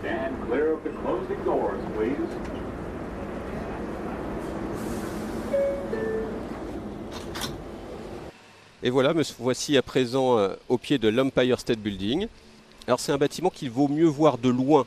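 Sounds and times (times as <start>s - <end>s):
subway train car rumbling while moving: 0.0s - 8.9s
speech: 8.8s - 14.8s.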